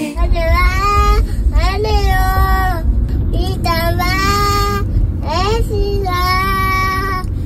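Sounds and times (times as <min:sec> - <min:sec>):
three-year-old girl singing along to a song: 0:00.1 - 0:07.3.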